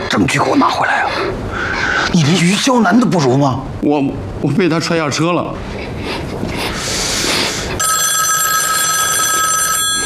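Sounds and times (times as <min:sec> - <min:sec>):
speech: 0:00.2 - 0:06.6
telephone ringing with a bright electronic tone: 0:07.8 - 0:10.0.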